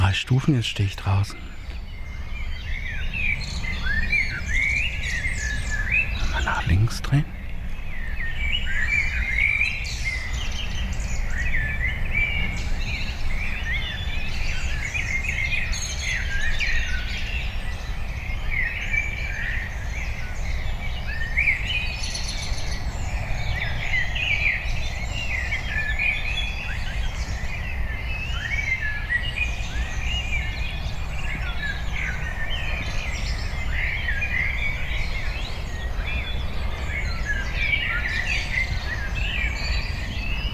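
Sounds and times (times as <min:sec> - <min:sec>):
several birds singing outdoors: 0:00.0 - 0:40.5
speech: 0:00.1 - 0:01.6, 0:06.7 - 0:07.4.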